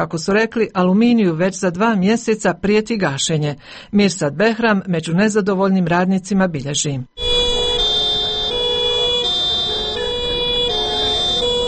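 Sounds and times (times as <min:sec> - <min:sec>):
speech: 0:00.0 - 0:07.2
noise: 0:00.0 - 0:11.6
sirens of heavy industrial vehicles at a workers' protest before an aluminium plant gate: 0:07.2 - 0:11.6.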